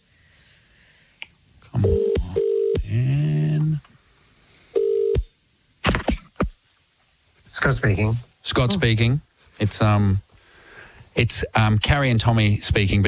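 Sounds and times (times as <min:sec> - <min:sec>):
person muttering: 0:01.7 - 0:03.9, 0:08.6 - 0:09.2
phone dialing beeps: 0:01.8 - 0:02.8
phone line ringing out: 0:01.8 - 0:02.8, 0:04.8 - 0:05.2
speech: 0:07.7 - 0:10.3, 0:11.2 - 0:13.0.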